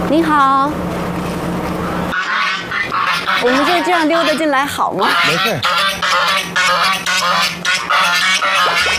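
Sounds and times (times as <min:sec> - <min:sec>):
speech: 0:00.1 - 0:00.9, 0:03.5 - 0:05.8
guard goose honking at a home: 0:01.8 - 0:08.9.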